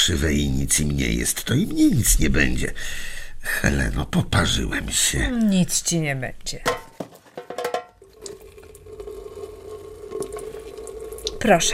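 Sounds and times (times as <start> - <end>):
speech: 0.0 - 6.8, 11.4 - 11.7
clattering splashes of boiling water: 6.7 - 8.3
boiling water poured over nettles: 7.4 - 11.7.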